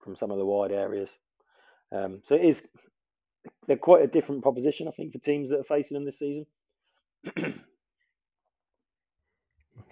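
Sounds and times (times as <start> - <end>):
speech: 0.1 - 1.3, 1.9 - 6.6, 7.2 - 7.7
person clearing throat: 7.2 - 7.8.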